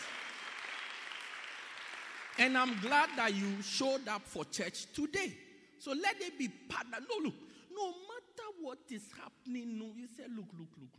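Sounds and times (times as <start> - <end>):
crowd of people clapping their hands: 0.0 - 3.7
speech: 2.4 - 10.9.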